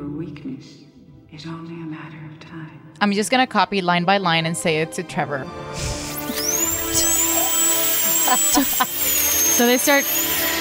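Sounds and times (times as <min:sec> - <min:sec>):
speech: 0:00.2 - 0:06.0, 0:08.3 - 0:10.3
high-pitched drill whine boring into a head: 0:06.1 - 0:10.6.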